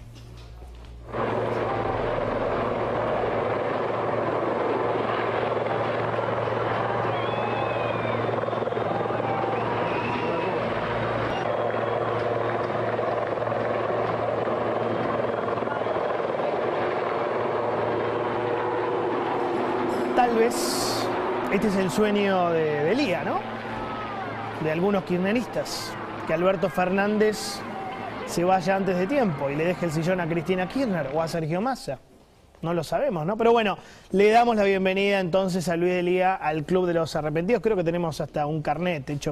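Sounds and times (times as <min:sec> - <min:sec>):
helicopter rotor noise overhead: 0:01.1 - 0:31.7
speech: 0:21.6 - 0:23.5, 0:24.6 - 0:27.6, 0:28.4 - 0:39.3.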